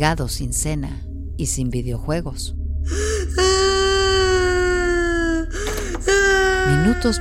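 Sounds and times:
speech: 0.0s - 3.7s, 6.7s - 7.1s
child crying in a sustained wail: 3.2s - 7.1s.

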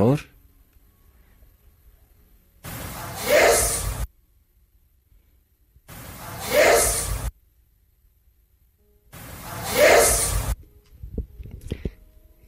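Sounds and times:
speech: 0.1s - 0.3s
loud hissing static bursts in an EVP recording: 2.6s - 4.1s, 5.9s - 7.3s, 9.2s - 10.6s.

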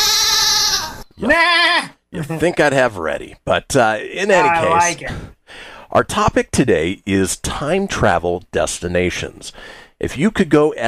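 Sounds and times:
goat bleating: 0.0s - 2.5s, 4.2s - 5.0s
speech: 1.2s - 10.8s.

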